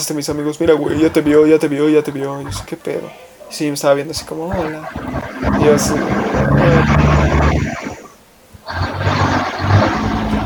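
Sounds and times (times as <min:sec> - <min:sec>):
speech: 0:00.0 - 0:07.8
trucks passing by outside: 0:04.6 - 0:10.4.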